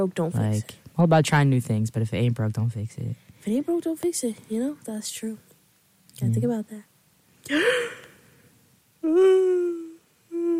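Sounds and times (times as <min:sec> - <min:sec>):
speech: 0:00.0 - 0:05.5, 0:06.2 - 0:08.0, 0:09.0 - 0:09.6
person yawning: 0:07.5 - 0:08.1, 0:09.0 - 0:10.5.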